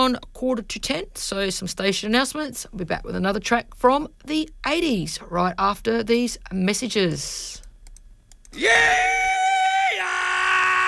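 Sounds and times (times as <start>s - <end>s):
speech: 0.0s - 7.6s, 8.5s - 9.3s
man letting out a loud sustained rebel yell: 8.6s - 10.8s.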